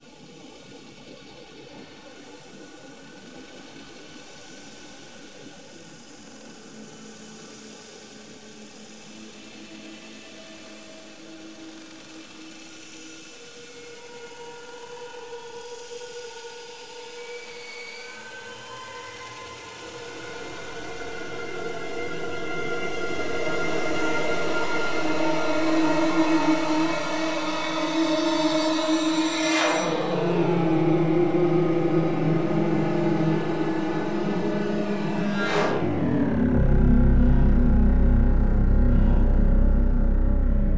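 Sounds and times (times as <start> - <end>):
virtual string instrument: 19.4 - 40.7.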